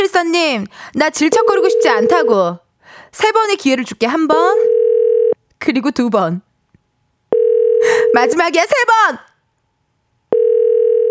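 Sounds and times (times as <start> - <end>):
speech: 0.2 - 4.8, 5.6 - 6.5, 7.8 - 9.3
loud steady electronic telephone tone: 4.7 - 5.4, 7.3 - 8.3, 10.3 - 11.0.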